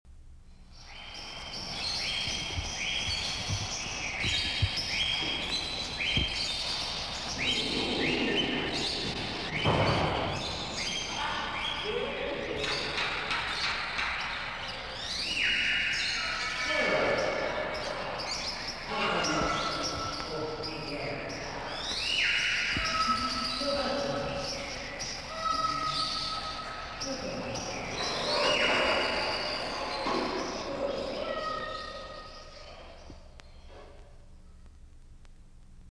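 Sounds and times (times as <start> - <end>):
birds: 0.4 - 34.8.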